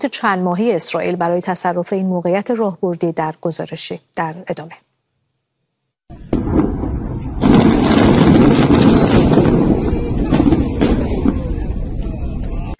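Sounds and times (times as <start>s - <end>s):
speech: 0.0s - 4.9s
deep rumbling roar: 6.1s - 12.7s
massive explosion: 6.1s - 12.7s.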